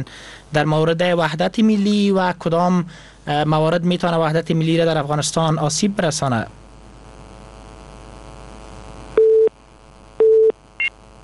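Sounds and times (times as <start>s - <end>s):
speech: 0.0s - 6.6s
telephone tones after a dropped call: 9.2s - 9.5s, 10.2s - 10.9s.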